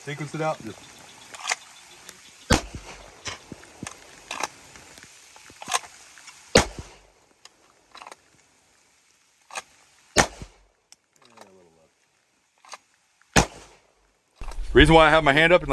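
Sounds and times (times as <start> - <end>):
speech: 0.0 - 1.0, 14.8 - 15.7
pistol shots fired from the holster during a shooting drill: 2.5 - 3.0, 10.2 - 10.6, 13.4 - 13.8.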